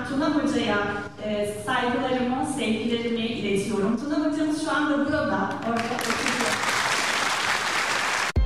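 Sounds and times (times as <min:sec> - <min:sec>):
speech: 0:00.1 - 0:06.6
crowd applauding: 0:05.7 - 0:08.4.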